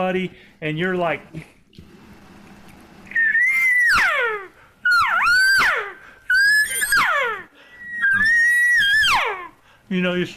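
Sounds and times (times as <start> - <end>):
speech: 0.0 - 1.6, 9.9 - 10.3
elk cow lost call blown on a handheld call: 3.2 - 9.6.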